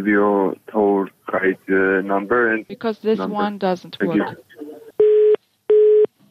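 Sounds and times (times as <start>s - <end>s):
person talking on a telephone: 0.0s - 4.9s
telephone busy signal beeps as the call is cut off: 5.0s - 6.2s.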